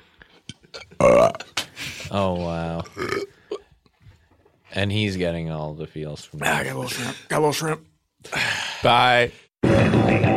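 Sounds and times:
speech: 0:00.8 - 0:01.5, 0:02.1 - 0:03.3, 0:04.8 - 0:10.3
loud low croaky burp: 0:01.0 - 0:01.6, 0:02.9 - 0:03.7.

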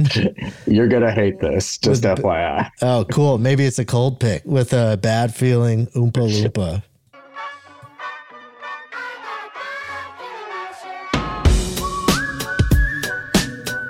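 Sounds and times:
speech: 0:00.0 - 0:06.9
band playing a song's instrumental intro: 0:07.2 - 0:13.8
whistled melody in a song intro: 0:07.2 - 0:13.8.

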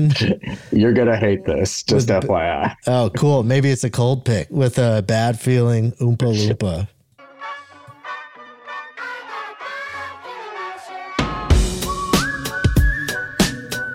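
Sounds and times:
speech: 0:00.0 - 0:07.0
whistled melody: 0:07.4 - 0:13.9
full band playing with drums: 0:11.2 - 0:13.8
high sustained whistle tone: 0:11.6 - 0:13.9.

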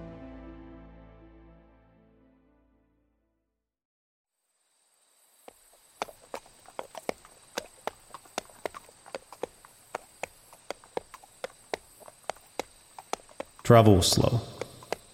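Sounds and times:
horse hooves clip-clopping at a walking pace: 0:05.4 - 0:15.1
speech: 0:13.7 - 0:14.6.

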